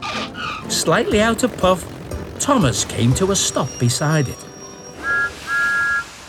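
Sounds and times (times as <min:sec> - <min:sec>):
speech: 0:00.7 - 0:04.5
steam engine whistle peeping: 0:03.3 - 0:06.2.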